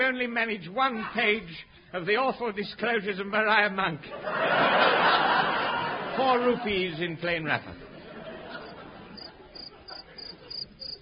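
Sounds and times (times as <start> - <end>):
speech: 0.1 - 5.6, 6.2 - 7.8
laughter: 4.1 - 11.0
cricket chirping at night: 8.6 - 11.0.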